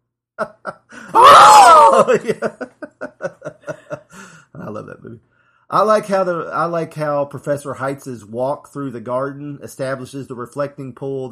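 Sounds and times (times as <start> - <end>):
speech: 0.4 - 2.7, 4.7 - 11.3
person letting out a loud wavering scream: 1.0 - 2.5
short rhythmic breathy laughs or gasps: 2.0 - 4.4.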